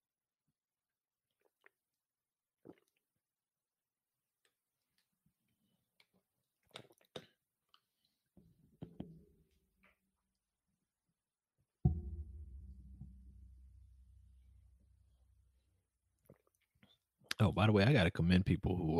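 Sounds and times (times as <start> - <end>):
person sipping water with quiet slurps: 1.3 - 2.0, 2.6 - 3.2, 6.0 - 8.2, 16.2 - 17.1
dull heavy low thump: 11.8 - 13.8
speech: 17.4 - 18.9.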